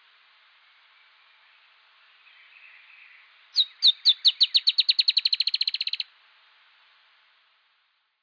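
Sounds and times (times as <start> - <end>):
Dusky-tailed antbird Drymophila malura singing: 0.6 - 6.1.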